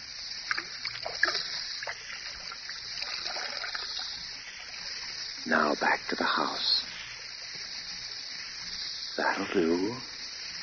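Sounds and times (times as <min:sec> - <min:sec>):
whiskey glugging and splashing out of a bottle: 0:00.5 - 0:04.2
speech: 0:05.5 - 0:06.8, 0:09.3 - 0:10.1.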